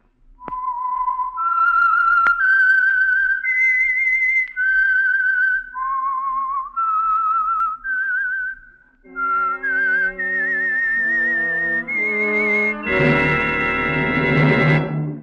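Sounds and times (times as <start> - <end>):
lone clear whistled melody: 0.4 - 15.2
orchestra playing the tune: 9.1 - 15.2.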